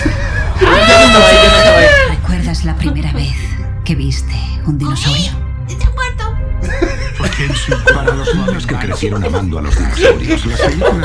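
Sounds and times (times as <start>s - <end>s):
several people screaming high-pitched: 0.4s - 2.3s
speech: 2.6s - 6.0s, 7.4s - 11.0s
laughter: 6.6s - 11.0s.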